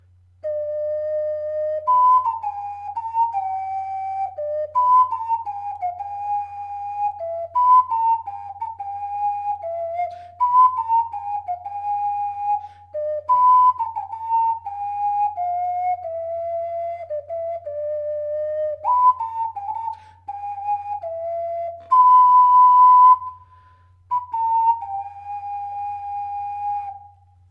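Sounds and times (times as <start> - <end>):
ocarina theme melody: 0.0 - 27.4.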